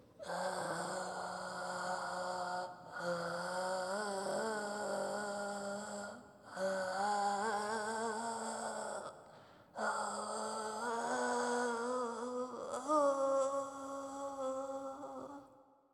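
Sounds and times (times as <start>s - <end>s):
old person singing: 0.2s - 9.2s, 9.8s - 15.5s.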